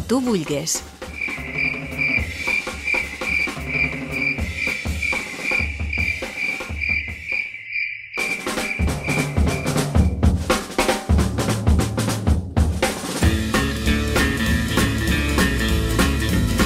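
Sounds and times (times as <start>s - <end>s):
rhythmic low thumping backdrop: 0.0s - 7.5s, 8.3s - 16.6s
speech: 0.1s - 1.0s
crickets chirping in a dense continuous trill: 1.1s - 10.2s.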